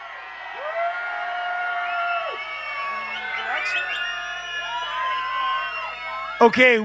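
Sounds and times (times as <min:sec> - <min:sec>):
large festival crowd screaming and cheering: 0:00.0 - 0:06.8.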